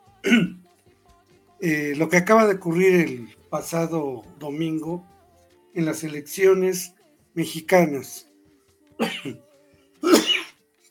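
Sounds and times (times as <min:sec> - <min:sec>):
person with a slight cough coughing: 0:00.2 - 0:00.6, 0:09.0 - 0:09.4, 0:10.0 - 0:10.6
speech: 0:00.2 - 0:00.6, 0:01.6 - 0:05.1, 0:05.8 - 0:08.3, 0:09.0 - 0:09.4.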